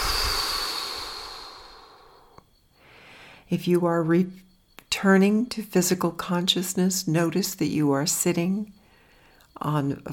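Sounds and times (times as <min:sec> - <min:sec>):
deep breath exhaled through the mouth during a guided relaxation exercise: 0:00.0 - 0:03.4
speech: 0:03.5 - 0:08.8, 0:09.6 - 0:10.1.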